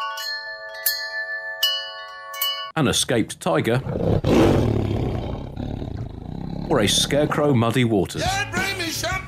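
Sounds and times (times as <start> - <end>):
wind chime ringing: 0.0 - 2.8
speech: 2.8 - 5.2, 6.7 - 9.1.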